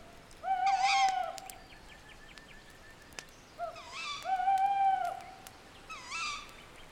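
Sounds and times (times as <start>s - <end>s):
faint hiss of quiet night air: 0.0s - 6.9s
owl hooting at night: 0.4s - 1.5s, 3.6s - 6.5s.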